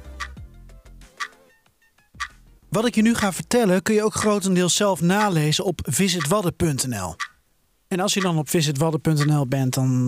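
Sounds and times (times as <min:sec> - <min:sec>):
clock ticking to start a timed countdown: 0:00.2 - 0:00.4, 0:02.2 - 0:02.4, 0:03.1 - 0:04.5, 0:05.1 - 0:07.4, 0:08.1 - 0:08.4, 0:09.2 - 0:09.5
speech: 0:02.7 - 0:07.3, 0:07.9 - 0:10.0.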